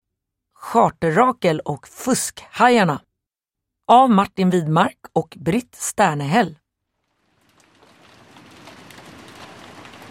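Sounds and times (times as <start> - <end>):
speech: 0.7 - 3.1, 3.9 - 6.6
steady autumn rain falling: 6.9 - 10.0.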